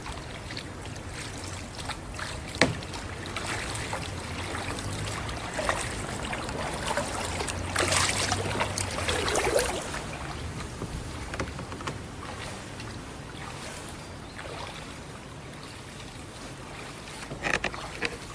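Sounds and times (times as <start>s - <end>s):
river water lapping and trickling against a wooden boat hull: 0.0s - 18.3s
knocks and splashes of a pole or paddle: 1.2s - 12.6s, 16.8s - 18.3s.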